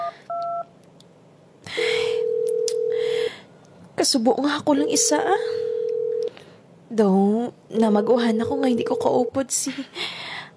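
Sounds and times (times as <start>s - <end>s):
long steady phone ringing tone of an unanswered call: 0.0s - 0.7s, 2.0s - 3.2s, 4.8s - 6.3s
short phone keypad beeps: 0.0s - 0.7s
speech: 4.0s - 5.6s, 6.9s - 10.2s.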